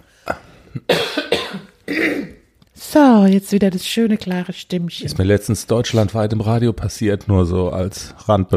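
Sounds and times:
person clearing throat: 0.2 - 2.4
speech: 3.3 - 8.5.

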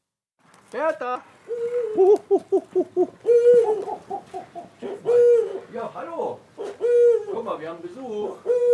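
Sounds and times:
speech: 0.7 - 8.7
bird giving hooting courtship and territorial call: 1.5 - 5.9, 6.6 - 8.7.

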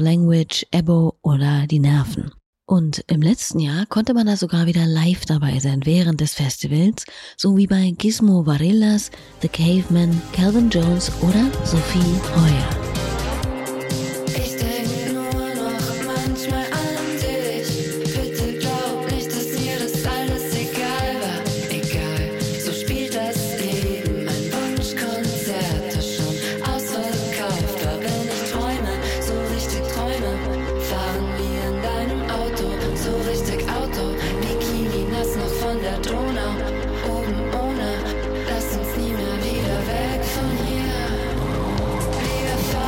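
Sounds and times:
speech: 0.0 - 12.8
loud song with driving beat, thick bass and layered melodic instruments: 10.1 - 42.8.

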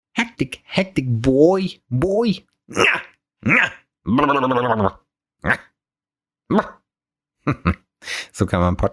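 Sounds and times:
speech: 0.4 - 5.7, 6.5 - 6.8, 7.4 - 8.9
person imitating a barking dog: 2.7 - 5.8, 6.5 - 6.9.

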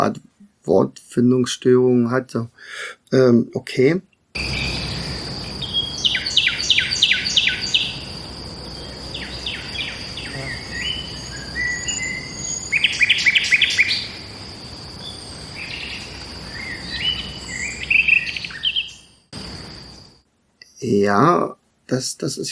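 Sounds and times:
speech: 0.0 - 4.8, 20.8 - 22.4
nightingale singing broken fragmented strophes: 4.4 - 20.2
steady high-pitched insect drone: 4.4 - 20.2.

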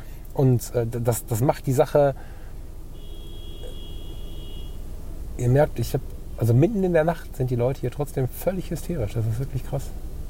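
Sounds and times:
low rumble of traffic at night: 0.0 - 10.2
speech: 0.4 - 2.4, 5.4 - 10.0
car horn honking in night traffic: 2.9 - 5.0.

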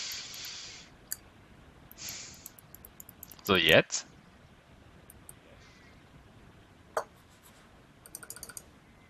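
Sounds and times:
quiet hiss: 0.0 - 9.0
battery-powered computer mouse clicking: 1.9 - 3.5, 5.1 - 5.4, 8.0 - 8.7
speech: 3.5 - 4.1.

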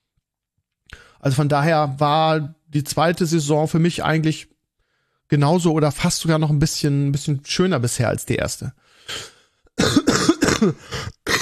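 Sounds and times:
speech: 1.2 - 4.5, 5.3 - 11.3
person coughing harshly: 9.1 - 11.3.

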